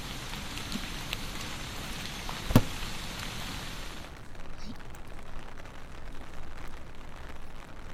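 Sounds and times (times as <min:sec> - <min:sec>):
steady rain falling on a folding umbrella: 0:00.0 - 0:07.9
sharp pop: 0:02.5 - 0:02.8.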